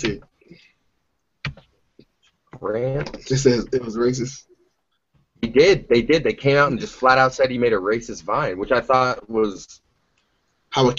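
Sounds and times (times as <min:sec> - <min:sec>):
keyboard typing: 0:01.4 - 0:02.4
speech: 0:02.6 - 0:04.5, 0:05.5 - 0:09.8, 0:10.7 - 0:10.9.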